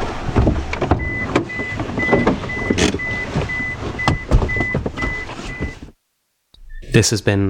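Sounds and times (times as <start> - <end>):
car reversing alarm beeping: 1.0 - 5.8
speech: 7.0 - 7.4.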